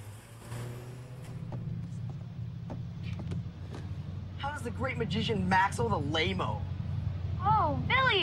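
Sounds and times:
school bus engine rumbling: 0:00.0 - 0:08.2
speech: 0:04.5 - 0:06.7, 0:07.4 - 0:08.2.

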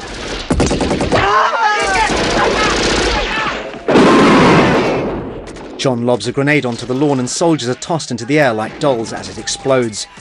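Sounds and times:
machine gun fire: 0:00.0 - 0:05.9
speech: 0:01.3 - 0:01.6, 0:05.8 - 0:10.2.

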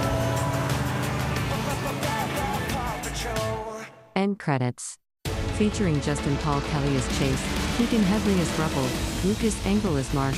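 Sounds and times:
red sports car engine roaring on a race track: 0:00.0 - 0:03.1, 0:06.5 - 0:10.3
speech: 0:04.2 - 0:05.0, 0:05.6 - 0:10.3.

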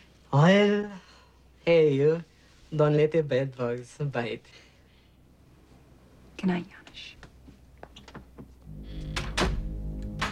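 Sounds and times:
speech: 0:00.3 - 0:01.0, 0:01.6 - 0:04.6, 0:06.4 - 0:07.2
door being closed and locked: 0:09.0 - 0:10.3.

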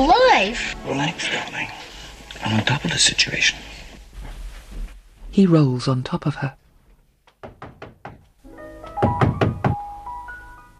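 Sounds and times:
speech: 0:00.0 - 0:03.7, 0:05.4 - 0:06.6
sustained tonal background: 0:00.0 - 0:04.4, 0:07.5 - 0:10.7
knocking on a door: 0:07.4 - 0:08.2, 0:08.9 - 0:09.9.

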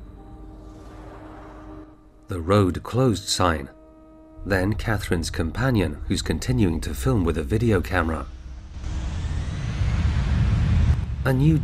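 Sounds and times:
speech: 0:02.3 - 0:03.8, 0:04.4 - 0:08.4, 0:11.2 - 0:11.6
airliner rolling along a runway in Los Angeles: 0:08.0 - 0:11.6.

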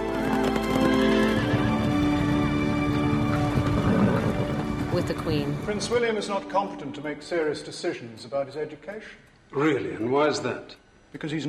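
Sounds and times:
horses whinnying and neighing: 0:00.0 - 0:04.9
horse hoofbeats clip-clopping: 0:00.0 - 0:06.1
speech: 0:05.1 - 0:11.4.

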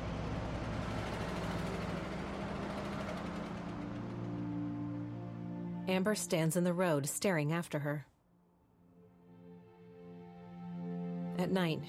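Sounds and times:
truck engine running as the truck drives away: 0:00.0 - 0:06.3
speech: 0:05.9 - 0:08.1, 0:11.4 - 0:11.8.

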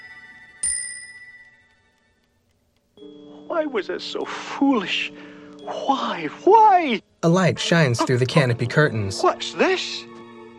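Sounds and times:
alarm clock bell chime: 0:00.0 - 0:01.8, 0:03.0 - 0:03.8
speech: 0:03.6 - 0:10.1.

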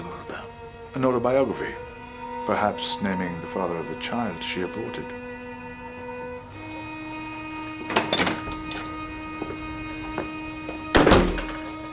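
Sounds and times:
speech: 0:01.0 - 0:01.8, 0:02.4 - 0:05.2
door being shut: 0:07.8 - 0:09.0, 0:10.9 - 0:11.9.

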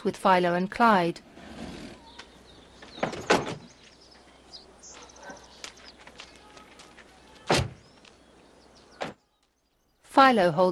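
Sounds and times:
speech: 0:00.0 - 0:01.3, 0:10.2 - 0:10.6
barn sliding door clunks: 0:02.8 - 0:03.8, 0:07.4 - 0:07.9.

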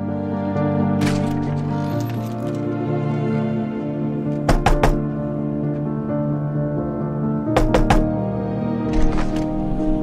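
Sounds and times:
steady music: 0:00.0 - 0:10.0
sharp knocks on a front door by police officers: 0:04.5 - 0:05.0, 0:07.6 - 0:08.1.

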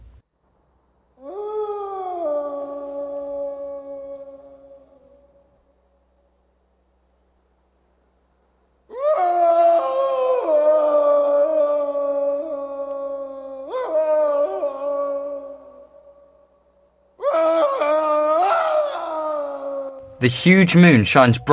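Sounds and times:
man howling into the night on a mansion roof: 0:01.2 - 0:05.6, 0:08.9 - 0:16.5, 0:17.2 - 0:20.1
speech: 0:20.2 - 0:21.5.

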